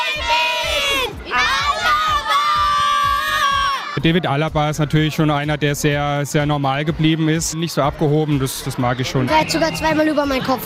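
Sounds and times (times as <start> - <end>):
crowd of fans in the stands shouting in unison: 0.0 - 4.0
speech: 4.0 - 10.6.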